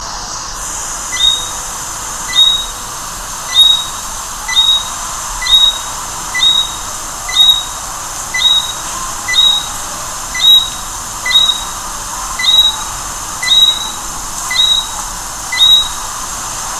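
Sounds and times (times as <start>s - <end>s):
Eleutherodactylus johnstonei calling: 0.6s - 16.4s.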